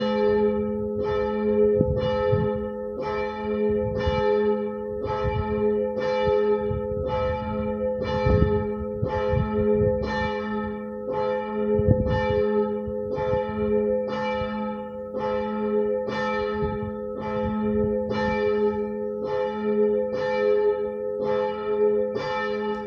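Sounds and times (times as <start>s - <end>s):
bells ringing: 0.0s - 22.8s.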